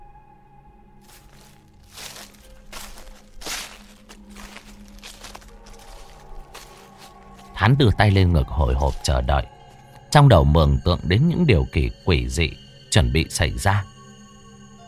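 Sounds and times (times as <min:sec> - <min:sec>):
low constant drone: 0:00.0 - 0:14.8
footsteps crunching on dry leaves: 0:01.0 - 0:09.8
speech: 0:07.6 - 0:14.0.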